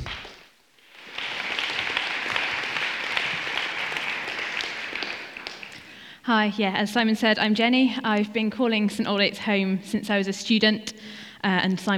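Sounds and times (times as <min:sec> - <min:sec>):
crowd applauding: 0:00.0 - 0:06.0
speech: 0:06.3 - 0:11.9.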